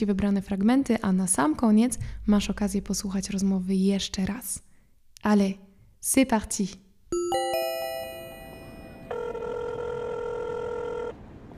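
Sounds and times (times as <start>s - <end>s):
speech: 0.0s - 6.8s
telephone ringing: 7.2s - 11.2s.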